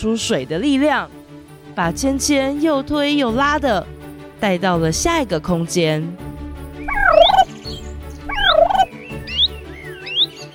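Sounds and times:
speech: 0:00.0 - 0:01.2, 0:01.8 - 0:06.2
group of animals chattering with warbling gobbling calls: 0:06.9 - 0:07.7, 0:08.3 - 0:10.4.

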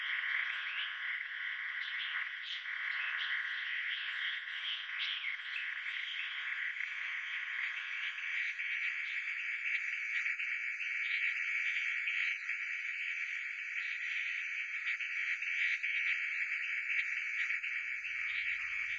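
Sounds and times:
frogs calling in a chorus of trilling and chirps: 0:00.0 - 0:18.9.

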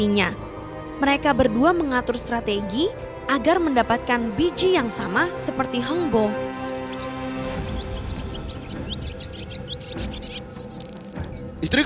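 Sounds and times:
speech: 0:00.0 - 0:00.4, 0:01.0 - 0:06.4
steady droning background: 0:00.0 - 0:11.8
swallows chirping: 0:05.8 - 0:11.8.

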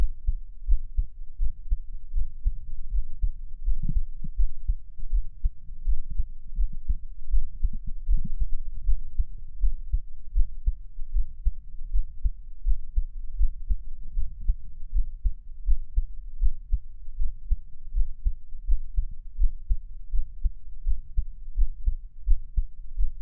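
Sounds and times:
deep heartbeat thumping: 0:00.0 - 0:23.2.

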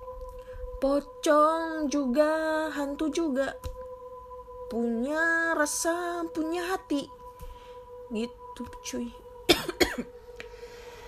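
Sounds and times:
speech: 0:00.8 - 0:03.8, 0:04.7 - 0:07.2, 0:08.1 - 0:09.2, 0:10.0 - 0:10.2
faint breath: 0:07.4 - 0:07.9, 0:10.3 - 0:11.0
person coughing: 0:09.5 - 0:10.1.

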